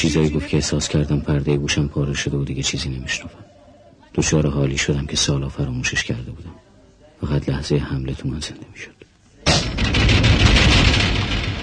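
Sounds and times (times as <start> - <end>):
speech: 0.0 - 3.4, 4.2 - 6.6, 7.2 - 11.0
man's fist punching glass door: 9.5 - 11.6
whole pane of glass cracking: 9.5 - 11.6.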